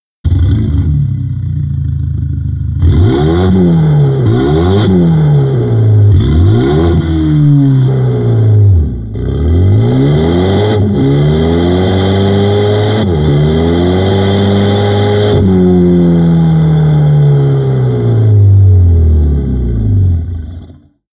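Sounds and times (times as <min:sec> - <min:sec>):
car active sound system engine sound: 0:00.2 - 0:20.8.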